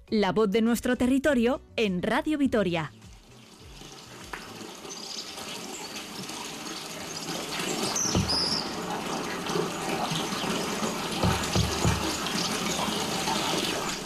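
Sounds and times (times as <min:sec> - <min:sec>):
speech: 0:00.1 - 0:03.0
steady stream of water pouring from a village fountain: 0:03.4 - 0:14.0.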